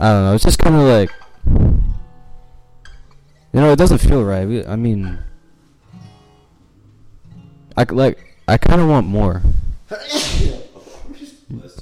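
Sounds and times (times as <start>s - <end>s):
speech: 0.0s - 1.9s, 3.6s - 5.3s, 7.8s - 10.6s
person sneezing: 9.9s - 11.3s.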